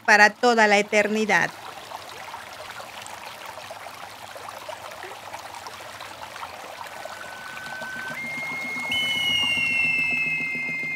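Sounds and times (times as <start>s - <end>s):
speech: 0.1s - 1.7s
waterfall pouring into a river: 6.7s - 9.1s
faint thin whistling tones: 6.8s - 10.9s.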